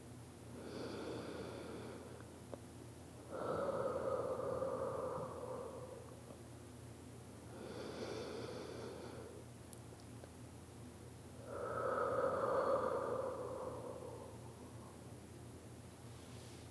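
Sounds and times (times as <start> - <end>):
slow heavy raspy wheezing breathing: 0.5 - 2.3, 3.2 - 6.4, 7.5 - 9.5, 11.4 - 15.1.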